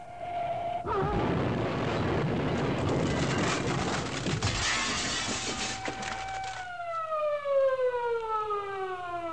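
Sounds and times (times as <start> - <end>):
ambulance siren: 0.0 - 9.3
car wreck crunching crash of splintering and scraping debris: 1.0 - 7.1.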